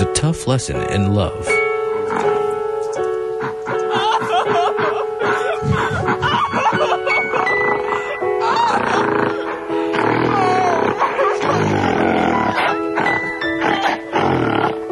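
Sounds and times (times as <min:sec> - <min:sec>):
speech: 0:00.2 - 0:02.3
laughter: 0:03.4 - 0:14.1
loud rough snoring: 0:08.7 - 0:14.8.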